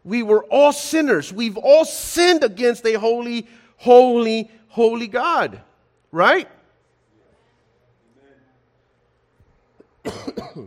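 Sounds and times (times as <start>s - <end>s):
speech: 0.0s - 6.6s, 10.0s - 10.6s
person coughing harshly: 10.0s - 10.6s.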